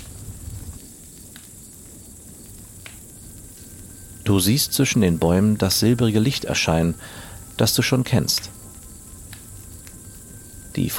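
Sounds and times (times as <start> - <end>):
burning logs popping in a campfire: 0.0 - 10.9
campfire crackling: 0.0 - 10.9
soft hiss and low rumble of a campfire: 0.0 - 10.9
speech: 4.3 - 8.6, 10.8 - 10.9.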